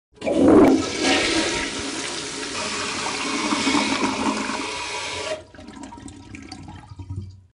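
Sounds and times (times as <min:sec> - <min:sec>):
toilet: 0:00.1 - 0:07.5.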